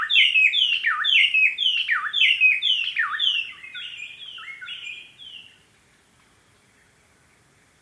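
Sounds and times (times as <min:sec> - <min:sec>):
white-browed robin-chat whistled song in the Okavango Panhandle: 0:00.0 - 0:05.6.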